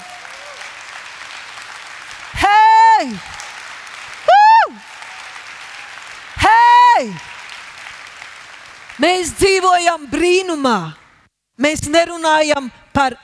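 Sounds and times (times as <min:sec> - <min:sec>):
crowd clapping as applause: 0:00.0 - 0:09.4
speech: 0:03.0 - 0:03.4, 0:07.0 - 0:07.4, 0:09.0 - 0:11.0, 0:11.6 - 0:13.2.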